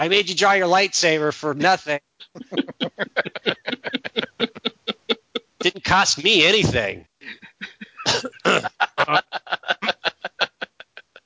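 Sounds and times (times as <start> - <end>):
speech: 0.0 - 4.1, 5.6 - 7.1
person acting out harsh breathy coughing: 2.2 - 5.8, 7.2 - 9.2
short choppy laugh-like vocal pulses: 2.2 - 5.8, 7.4 - 11.2.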